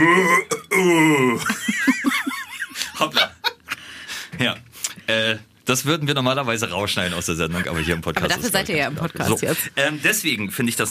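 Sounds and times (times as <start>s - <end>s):
speech: 0.0s - 0.5s, 5.8s - 10.8s
person doing a croaky burp-like moo imitating a belching cow: 0.0s - 1.5s
person laughing with squeaky giggles: 1.2s - 3.8s.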